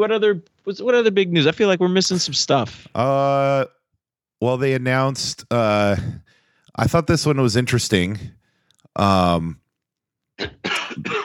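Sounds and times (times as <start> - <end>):
speech: 0.0 - 3.8, 4.4 - 8.4, 9.0 - 9.6, 10.4 - 11.2
person coughing: 10.4 - 11.2.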